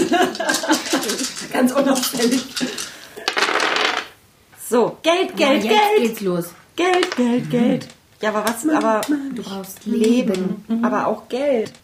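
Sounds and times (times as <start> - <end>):
laughter: 0.0 - 2.8
dice rolled across a hard tabletop: 0.4 - 4.2, 6.9 - 7.3
speech: 1.6 - 2.7, 4.7 - 11.8.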